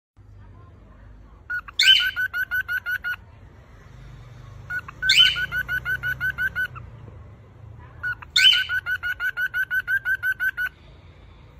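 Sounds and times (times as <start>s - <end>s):
female and male cockatiel chirping: 1.5s - 3.2s, 4.7s - 6.8s, 8.0s - 10.7s.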